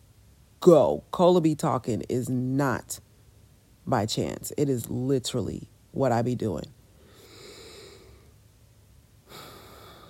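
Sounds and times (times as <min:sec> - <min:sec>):
speech: 0:00.6 - 0:03.0, 0:03.9 - 0:06.8
slow deep airy inhale: 0:07.0 - 0:08.3, 0:09.3 - 0:10.0.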